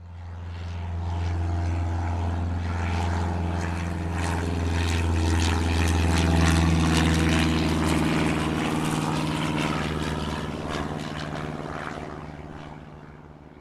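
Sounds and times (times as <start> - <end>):
World War II era propeller plane engine droning: 0.0 - 13.5.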